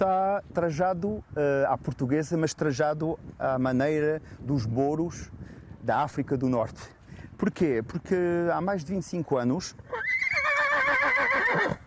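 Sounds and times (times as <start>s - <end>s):
speech: 0.0s - 10.2s
Lusitano horse whinnying: 9.9s - 11.8s.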